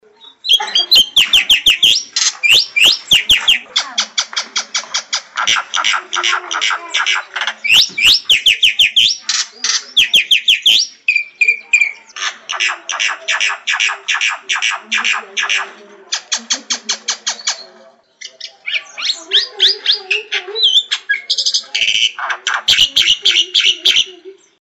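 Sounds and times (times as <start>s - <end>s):
jalak putih calling: 0.0s - 24.5s.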